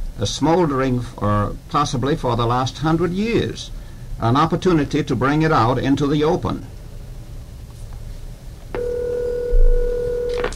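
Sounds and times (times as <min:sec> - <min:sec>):
speech: 0:00.2 - 0:06.8
electronic telephone ring from an incoming call: 0:08.8 - 0:10.5.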